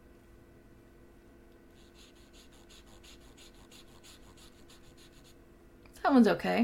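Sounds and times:
low hum: 0:00.0 - 0:06.6
pen scratching across paper: 0:01.8 - 0:05.4
speech: 0:06.1 - 0:06.6.

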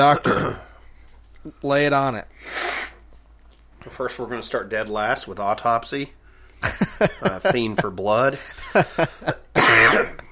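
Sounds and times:
speech: 0:00.0 - 0:00.6, 0:01.4 - 0:02.9, 0:03.8 - 0:10.2
person coughing with throaty and hacking coughs: 0:00.0 - 0:00.8, 0:09.3 - 0:10.2
laughter: 0:06.6 - 0:09.5.

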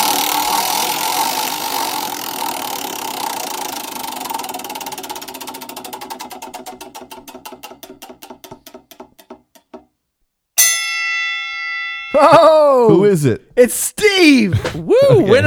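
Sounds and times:
prize wheel spinning and clicking at a beer tasting: 0:00.0 - 0:09.7
bright ringing chime: 0:10.6 - 0:12.7
laughter: 0:11.0 - 0:15.3
speech: 0:12.2 - 0:15.4.

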